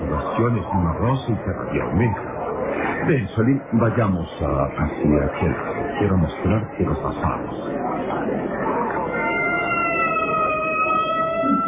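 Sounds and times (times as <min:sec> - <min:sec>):
continuous noisy street background: 0:00.0 - 0:11.6
speech: 0:00.4 - 0:02.4, 0:03.0 - 0:07.8
ambulance siren wailing in a street of a Chinese quarter: 0:09.0 - 0:11.6.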